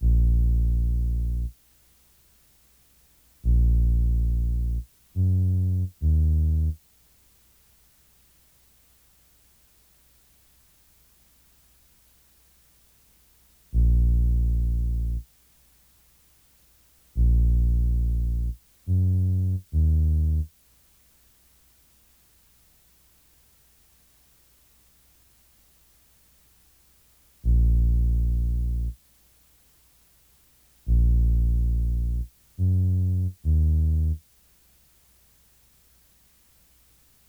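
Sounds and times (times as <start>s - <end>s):
bass loop in A sharp minor: 0.0s - 1.5s, 3.5s - 6.8s, 13.8s - 15.2s, 17.2s - 20.5s, 27.5s - 29.0s, 30.9s - 34.2s.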